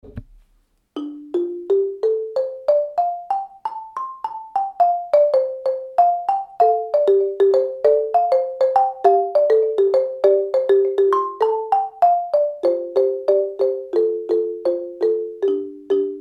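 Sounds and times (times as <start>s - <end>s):
xylophone playing a pentatonic example: 1.0s - 16.2s.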